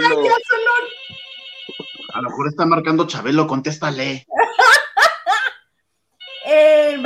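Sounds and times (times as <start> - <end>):
phone ringing with a bright electronic ringtone: 0.0 - 3.2, 6.2 - 7.0
speech: 2.2 - 4.8
laughter: 4.3 - 5.6.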